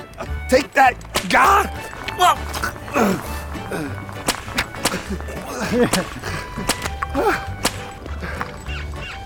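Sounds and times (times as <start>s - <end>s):
speech: 0.5s - 4.0s, 5.1s - 6.3s, 7.2s - 7.5s
rope whip lashing a spinning wooden top in an ice top-whipping competition: 4.3s - 5.1s, 5.9s - 7.9s
laughter: 4.7s - 8.6s.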